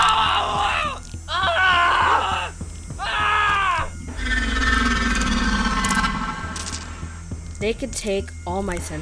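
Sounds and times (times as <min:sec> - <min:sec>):
male officers screaming in terror: 0:00.0 - 0:06.4
rough rumbling commotion: 0:03.8 - 0:07.7
speech: 0:07.6 - 0:09.0.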